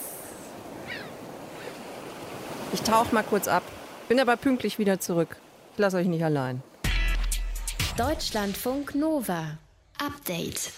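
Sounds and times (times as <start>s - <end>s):
ocean waves surf rolling in: 0.0s - 6.9s
speech: 2.7s - 6.7s, 8.0s - 10.7s.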